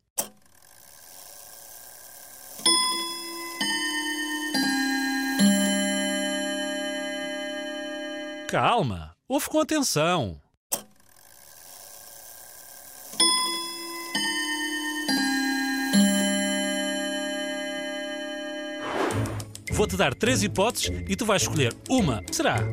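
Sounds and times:
old clock chiming: 2.3 - 8.5, 13.1 - 18.8
speech: 8.5 - 10.4, 19.8 - 22.7.

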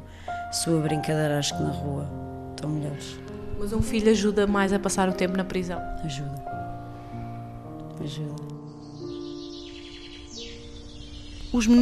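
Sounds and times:
speech: 0.5 - 6.6, 8.0 - 8.5, 11.5 - 11.8
house sparrows chirping around stone pines at a prison: 2.6 - 11.8.

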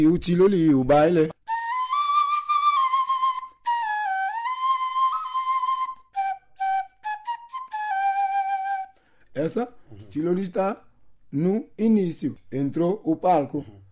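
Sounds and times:
speech: 0.0 - 1.4, 9.5 - 13.8
pito doxi bamboo whistle playing: 1.4 - 9.1.

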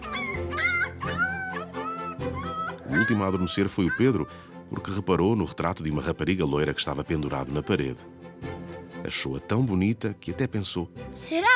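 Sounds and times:
dogs whimpering and yipping: 0.0 - 4.4
speech: 2.9 - 8.3, 9.1 - 11.5.

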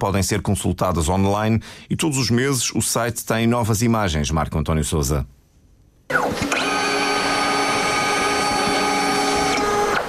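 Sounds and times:
speech: 0.0 - 5.4, 6.1 - 6.5
scanner motor whirring while digitizing photographic negatives: 6.1 - 10.0.

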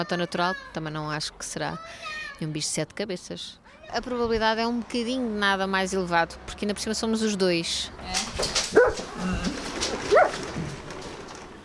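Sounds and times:
speech: 0.0 - 10.3
large dog barking: 8.7 - 9.1, 10.1 - 10.4.

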